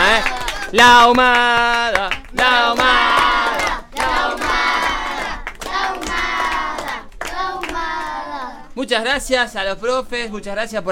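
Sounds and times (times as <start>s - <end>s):
third and fourth grade children applauding as a crowd: 0.0s - 8.5s
speech: 0.2s - 3.2s, 8.8s - 10.9s.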